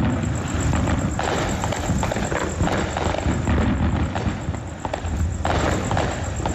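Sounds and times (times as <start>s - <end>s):
fireworks bangs and crackles: 0.0s - 6.5s.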